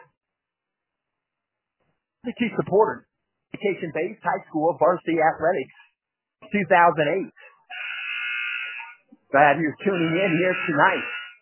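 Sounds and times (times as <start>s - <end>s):
speech: 2.2s - 7.4s, 9.3s - 11.2s
basketball game clock buzzer at a high school varsity game: 7.7s - 9.0s, 9.8s - 11.4s.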